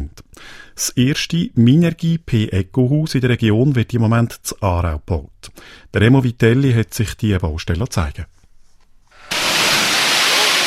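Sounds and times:
speech: 0:00.8 - 0:08.4
pressure washer spraying a freshly concreted wall at a house construction site: 0:09.2 - 0:10.6.

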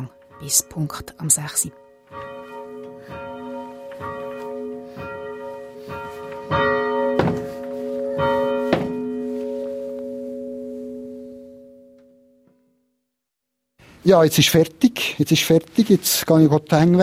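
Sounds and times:
church bell rung by hand with a rope tolling: 0:00.0 - 0:12.9
speech: 0:00.4 - 0:01.8, 0:04.0 - 0:04.2, 0:06.5 - 0:06.8, 0:14.0 - 0:17.0.

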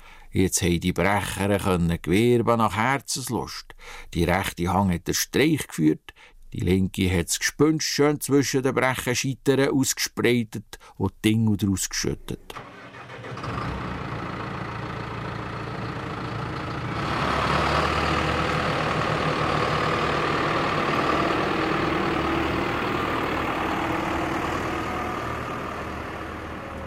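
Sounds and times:
speech: 0:00.3 - 0:12.7
farm vehicle engine hauling a load of flax seed in the Emmental: 0:12.6 - 0:26.8.

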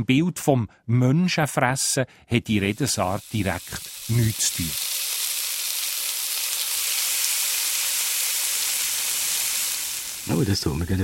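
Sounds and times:
speech: 0:00.0 - 0:04.9, 0:10.3 - 0:11.0
frying pan sizzling with a bright hiss: 0:02.5 - 0:11.0.

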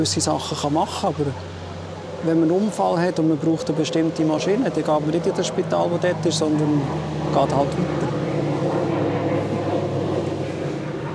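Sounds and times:
speech: 0:00.0 - 0:01.6, 0:02.2 - 0:08.1
propeller aircraft on a test flight droning overhead: 0:00.0 - 0:11.1.

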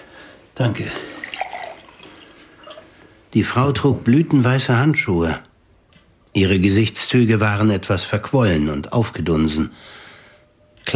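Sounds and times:
speech: 0:00.6 - 0:01.2, 0:03.3 - 0:05.5, 0:06.4 - 0:10.0
water poured into a glass: 0:01.0 - 0:02.8.

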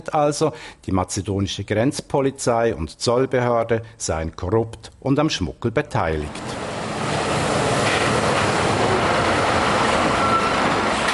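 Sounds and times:
speech: 0:00.0 - 0:07.2
heavy truck rolling through terminal entrance gate: 0:06.3 - 0:11.1.

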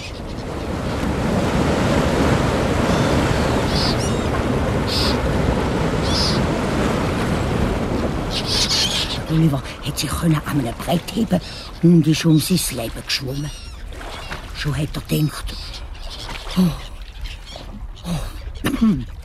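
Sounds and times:
gusty stormy wind: 0:00.0 - 0:11.8
big ocean waves crashing on a stormy sea: 0:00.0 - 0:19.2
speech: 0:09.4 - 0:13.7, 0:14.6 - 0:15.7, 0:16.5 - 0:16.9, 0:18.8 - 0:19.2.

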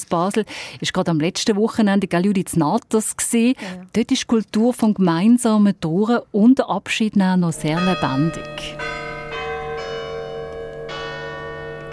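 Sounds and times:
speech: 0:00.1 - 0:08.9
carillon bells ringing: 0:07.5 - 0:11.9.

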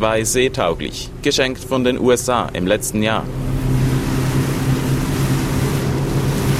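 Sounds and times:
speech: 0:00.0 - 0:03.5
small navy patrol boat engine droning with a low hum: 0:00.0 - 0:06.5
wind rushing: 0:03.2 - 0:06.5
water slapping against the hull of a small navy patrol boat: 0:03.3 - 0:06.5.

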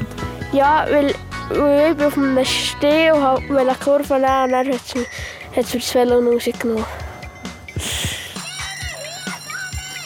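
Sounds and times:
speech: 0:00.5 - 0:07.0
school bell ringing: 0:08.4 - 0:10.0.

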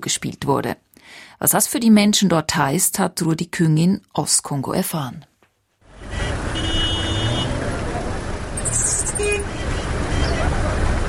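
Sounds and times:
speech: 0:00.0 - 0:05.3
idling and rumbling engines of cars, buses and trucks: 0:05.8 - 0:11.0
brief high horn toot: 0:06.0 - 0:07.8, 0:08.6 - 0:10.6.

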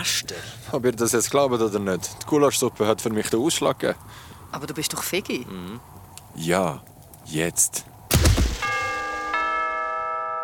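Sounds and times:
speech: 0:00.0 - 0:07.9
two-tone doorbell chime: 0:08.6 - 0:10.4.

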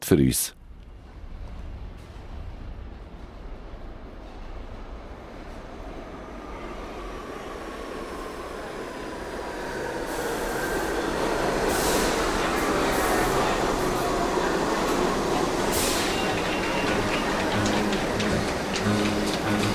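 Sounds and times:
speech: 0:00.1 - 0:00.6
New York subway train rumbling along the tracks: 0:00.6 - 0:19.7.

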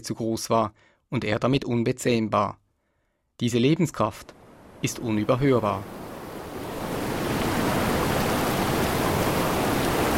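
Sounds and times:
speech: 0:00.0 - 0:02.6, 0:03.4 - 0:06.0
rushing wild braided river water: 0:04.4 - 0:10.1.

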